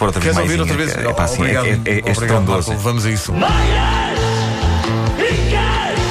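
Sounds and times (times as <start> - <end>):
driving pop track with bass and drum groove: 0.0 - 6.0
speech: 0.1 - 4.3
singer yelling over a pop track: 3.3 - 6.0.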